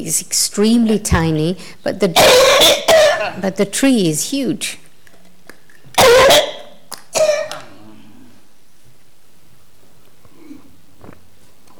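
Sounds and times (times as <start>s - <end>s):
speech: 0.0s - 4.8s
person coughing: 2.2s - 3.5s, 6.0s - 7.9s.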